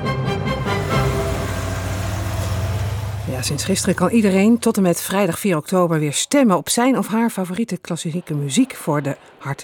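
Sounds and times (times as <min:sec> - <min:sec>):
old Volkswagen bus engine rumbling while driven around the Netherlands: 0:00.5 - 0:05.2
speech: 0:03.4 - 0:09.6.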